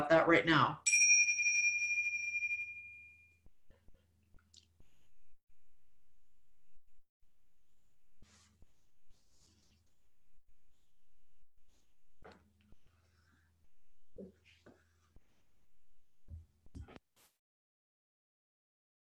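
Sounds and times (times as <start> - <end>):
speech: 0.0 - 0.9
chime ringing: 0.8 - 3.4.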